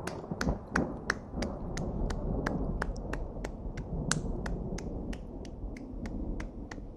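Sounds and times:
hands clapping: 0:00.1 - 0:06.9.

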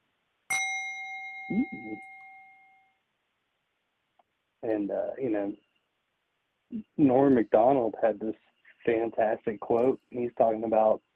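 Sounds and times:
Tibetan singing bowl struck and ringing: 0:00.5 - 0:03.0
speech: 0:01.5 - 0:02.2, 0:04.6 - 0:05.6, 0:06.7 - 0:11.1.

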